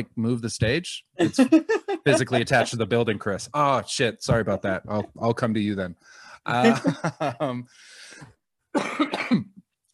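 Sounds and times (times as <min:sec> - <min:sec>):
speech: 0:00.0 - 0:09.5
laughter: 0:01.2 - 0:03.7, 0:06.5 - 0:07.7
wheezy breath: 0:07.7 - 0:08.3
harsh raspy smoker's cough: 0:08.8 - 0:09.6.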